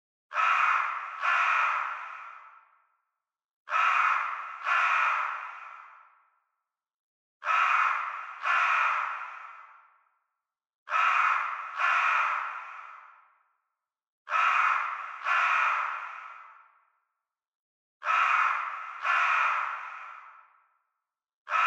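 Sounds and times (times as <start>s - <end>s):
crow calling: 0.3s - 2.8s, 3.7s - 6.3s, 7.4s - 10.0s, 10.9s - 13.4s, 14.3s - 16.9s, 18.0s - 20.7s, 21.5s - 21.6s.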